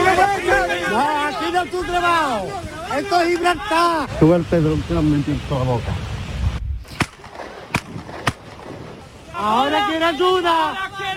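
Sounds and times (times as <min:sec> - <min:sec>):
rough noisy outdoor background: 0:00.0 - 0:11.1
speech: 0:01.6 - 0:06.0, 0:09.4 - 0:11.1
sharp loud cracks like gunshots: 0:06.9 - 0:08.8.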